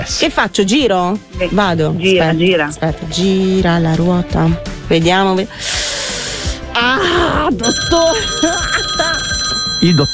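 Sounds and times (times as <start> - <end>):
speech: 0.1 - 5.8, 6.8 - 10.1
telephone ringing during a quiz game: 7.6 - 10.1.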